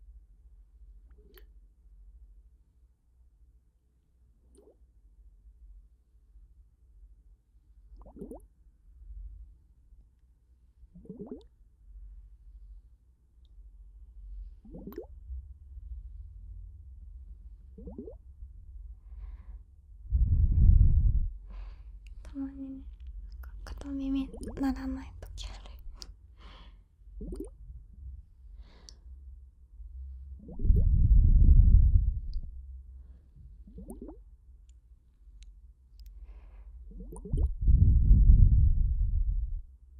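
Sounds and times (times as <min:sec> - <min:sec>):
low steady rumble: 0:00.0 - 0:39.9
soft water plops and drips with upward bloop: 0:08.0 - 0:08.4, 0:24.3 - 0:24.6, 0:27.2 - 0:27.5, 0:33.7 - 0:34.2.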